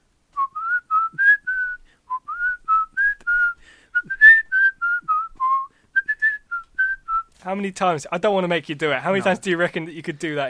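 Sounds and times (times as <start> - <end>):
person whistling a tune: 0.4 - 7.3
speech: 7.4 - 10.4.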